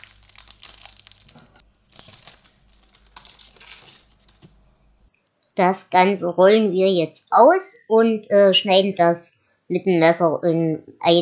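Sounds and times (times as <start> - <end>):
puff pastry package being ripped open in a kitchen: 0.0 - 5.1
speech: 5.6 - 11.2.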